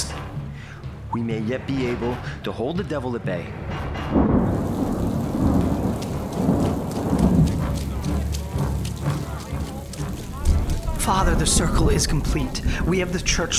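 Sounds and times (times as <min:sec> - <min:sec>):
speech: 0:01.1 - 0:04.4, 0:11.1 - 0:13.5
deep rolling thunder: 0:03.6 - 0:08.7, 0:10.2 - 0:13.5
heavy rain downpour: 0:04.1 - 0:13.5.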